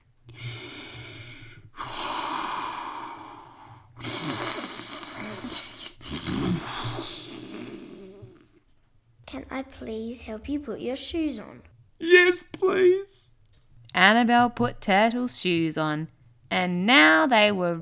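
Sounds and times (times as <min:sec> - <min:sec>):
deep breathing in through nose and out through mouth as a calming exercise: 0:00.2 - 0:08.6
speech: 0:09.5 - 0:13.3, 0:14.0 - 0:17.8.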